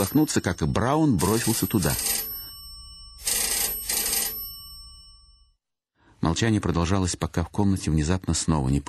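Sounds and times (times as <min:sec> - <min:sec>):
speech: 0:00.0 - 0:02.3, 0:06.3 - 0:08.8
telephone bell ringing in an adjoining room: 0:00.0 - 0:05.6.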